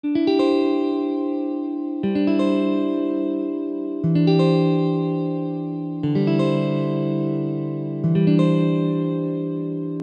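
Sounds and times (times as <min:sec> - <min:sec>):
seventh chord inversion: 0:00.0 - 0:10.0.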